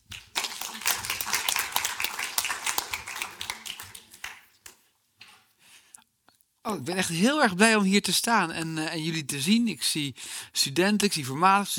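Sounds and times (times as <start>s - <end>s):
audience applause: 0.0s - 4.8s
speech: 6.7s - 11.7s.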